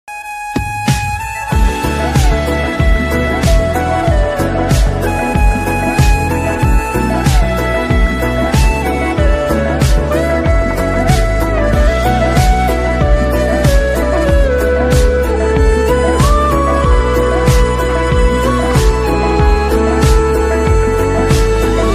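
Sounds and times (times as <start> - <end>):
flute instrumental ringtone: 0.1 - 21.9.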